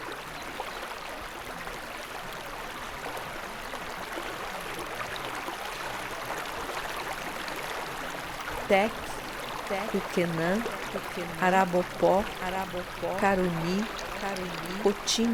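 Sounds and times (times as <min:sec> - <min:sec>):
stream of water gushing from a tree trunk: 0:01.4 - 0:15.3
speech: 0:08.7 - 0:09.1, 0:09.7 - 0:15.3.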